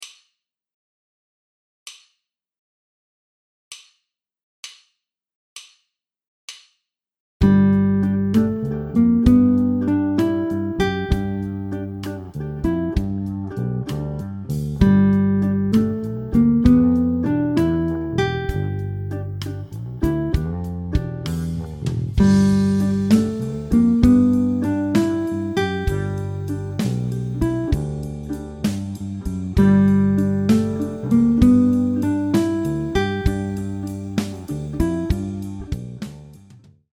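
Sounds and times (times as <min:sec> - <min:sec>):
jazz guitar riff: 0:07.4 - 0:13.8, 0:14.8 - 0:36.0.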